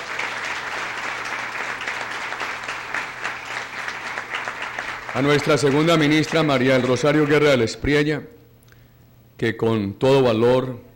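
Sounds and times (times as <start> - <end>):
sustained applause from a sizable audience: 0.0 - 7.8
speech: 5.2 - 8.4, 9.4 - 10.9.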